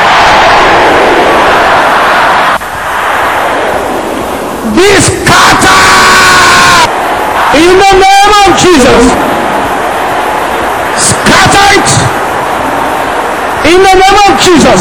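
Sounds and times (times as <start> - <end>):
large audience shouting a prayer together: 0.0 - 14.7
speech: 7.6 - 9.4, 11.0 - 12.2, 13.6 - 14.7.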